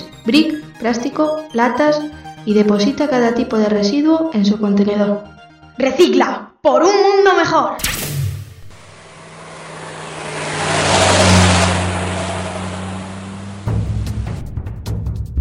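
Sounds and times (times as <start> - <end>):
speech: 0.2 - 7.9
race car engine revving in an auto racing setting: 8.6 - 14.6.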